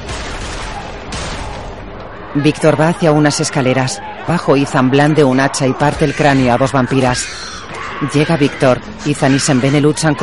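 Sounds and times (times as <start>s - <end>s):
sharp gun blast in a horror film fight scene: 0.0s - 1.9s
gunshots fired at vampires in a horror film fight scene: 0.0s - 2.2s
speech: 2.3s - 10.2s.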